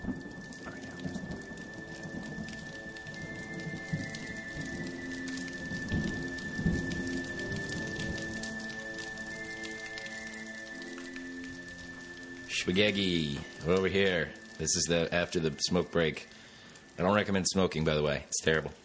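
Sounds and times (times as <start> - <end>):
deep rolling thunder rumbles: 0.0 - 8.7
thin steady high tone: 0.0 - 18.2
rain falling steadily on surfaces: 0.0 - 18.8
speech: 12.6 - 16.4, 17.0 - 18.8.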